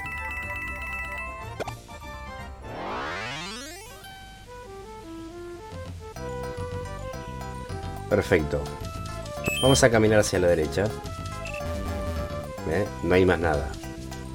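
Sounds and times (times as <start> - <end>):
electronic video game chimes for collecting coins and gems: 0.0 - 1.7, 9.4 - 10.0
tinkly synthesized notes: 0.0 - 1.7, 9.4 - 10.3
quick rising glissando: 2.6 - 4.1
speech: 8.1 - 8.9, 9.6 - 11.2, 12.7 - 13.8.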